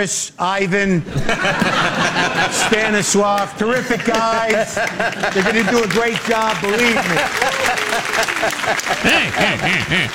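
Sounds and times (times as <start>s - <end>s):
speech: 0.0s - 10.1s
audience laughing: 1.0s - 10.1s
audience clapping: 3.3s - 10.1s
raised voices: 9.0s - 10.1s.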